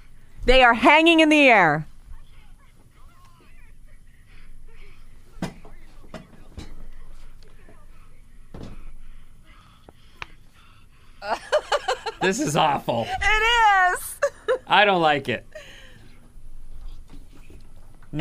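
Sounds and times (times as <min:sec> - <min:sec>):
low hum: 0:00.0 - 0:18.2
speech: 0:00.4 - 0:01.9, 0:12.2 - 0:15.7
heavy breathing of two people making out while hanging in the air: 0:08.9 - 0:11.3, 0:15.5 - 0:16.2
laughter: 0:11.2 - 0:13.3, 0:14.0 - 0:14.7.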